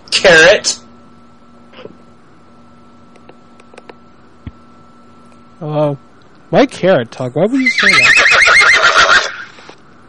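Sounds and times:
speech: 0.2s - 0.8s, 5.6s - 8.1s
horse neighing: 7.6s - 9.7s.

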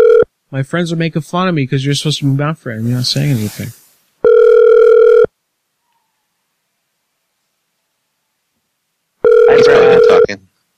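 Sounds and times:
telephone ringing with an electronic tone: 0.0s - 0.3s, 4.2s - 5.3s, 9.2s - 10.3s
speech: 0.5s - 3.8s.

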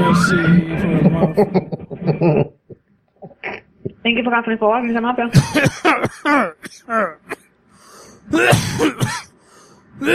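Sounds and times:
speech: 0.2s - 2.6s, 4.1s - 7.4s, 8.3s - 9.3s, 10.0s - 10.1s
laughter: 0.6s - 2.6s
person on hold with a pharmacy clinic coughing: 5.3s - 7.4s, 8.3s - 9.3s, 10.0s - 10.1s.

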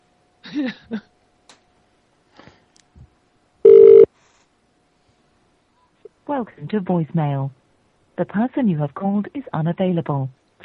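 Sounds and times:
speech: 0.5s - 1.1s, 6.3s - 7.6s, 8.2s - 10.4s
ringback tone of an outgoing telephone call: 3.6s - 4.1s.

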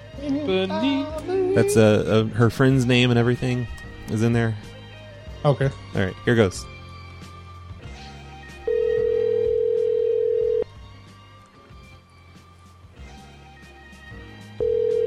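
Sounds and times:
soft musical backing: 0.0s - 15.0s
speech: 0.2s - 4.7s, 5.4s - 6.7s
telephone ringing with a steady electronic tone: 8.7s - 10.6s, 14.6s - 15.0s.

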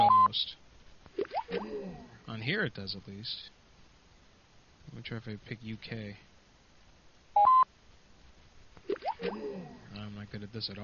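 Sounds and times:
telephone keypad beep as an international prefix is entered: 0.0s - 0.3s, 7.4s - 7.6s
speech: 0.3s - 0.6s, 2.3s - 3.6s, 4.9s - 6.3s, 10.2s - 10.8s.

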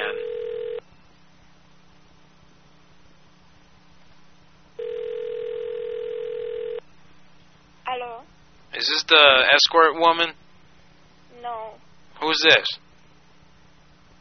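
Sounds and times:
electronic telephone dial tone: 0.0s - 0.8s, 4.8s - 6.8s
speech: 9.1s - 10.4s, 12.3s - 12.8s.

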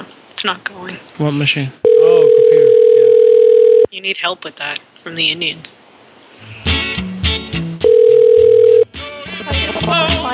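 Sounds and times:
speech: 0.4s - 2.8s, 4.0s - 5.8s, 9.8s - 10.3s
steady electronic phone tone on a customer support call line: 1.8s - 3.9s, 7.8s - 8.9s.

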